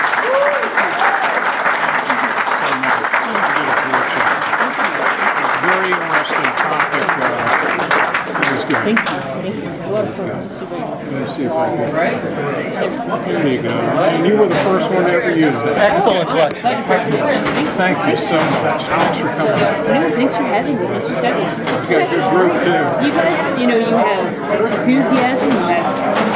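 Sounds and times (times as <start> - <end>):
audience applauding with dense clapping: 0.0 - 9.1
speech: 10.2 - 26.3.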